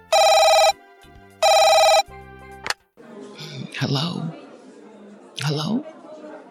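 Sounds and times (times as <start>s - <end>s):
telephone ringing at night: 0.0s - 0.8s, 1.4s - 2.1s
speech: 3.8s - 4.4s, 5.4s - 6.0s.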